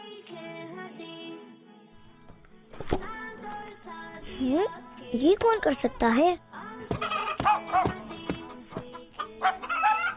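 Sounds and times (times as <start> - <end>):
speech: 4.4 - 6.5
rooster clucking: 6.9 - 10.1.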